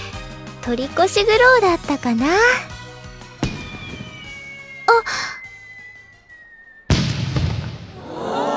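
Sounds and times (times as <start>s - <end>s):
speech: 0.7s - 2.7s
fireworks bursting with a boom: 2.2s - 8.5s
steady high tone: 3.6s - 6.9s.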